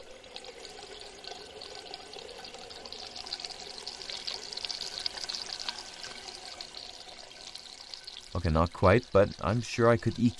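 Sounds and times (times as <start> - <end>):
urinals flushing in a public toilet in London: 0.0 - 10.3
speech: 8.4 - 10.3.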